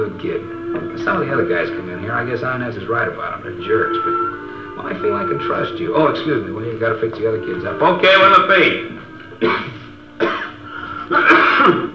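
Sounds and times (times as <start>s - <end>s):
speech: 0.0s - 9.8s, 11.1s - 11.9s
person coughing with throat-clearing rasp: 9.4s - 11.9s.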